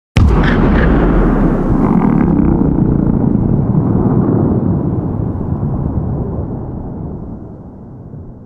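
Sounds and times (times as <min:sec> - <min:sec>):
loud explosion at a dam with throbbing echo reflections: 0:00.2 - 0:08.4.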